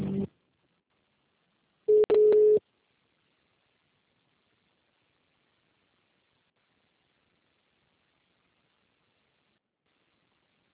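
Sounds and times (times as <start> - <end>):
telephone tones during call transfer on a state pension phone line: 1.9 - 2.6.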